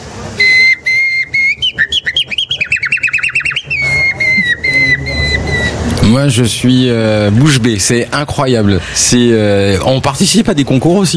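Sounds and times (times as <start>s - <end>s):
person whistling an imitation of nightingale song: 0.4s - 5.8s
speech: 6.1s - 11.1s.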